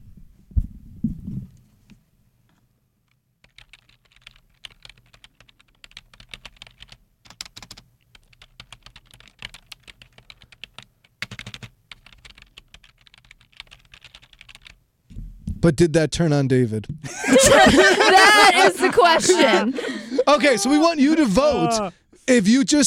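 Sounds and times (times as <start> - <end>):
computer keyboard typing: 3.4 - 14.8
low thump: 15.1 - 15.8
speech: 15.6 - 22.8
laughter: 17.1 - 22.0.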